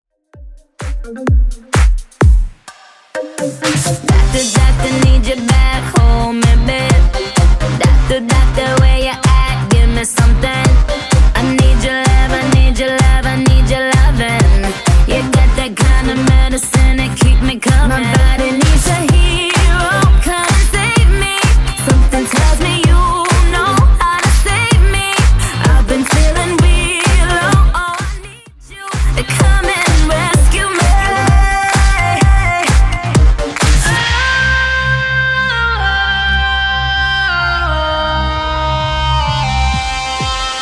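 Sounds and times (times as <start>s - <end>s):
Top40 DJ-friendly dance music track at 128 bpm: 0.4s - 40.6s.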